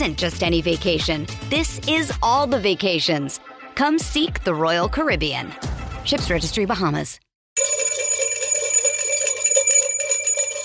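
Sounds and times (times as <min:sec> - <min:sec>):
speech: 0:00.0 - 0:07.2
bright clear bell ringing: 0:07.6 - 0:10.6.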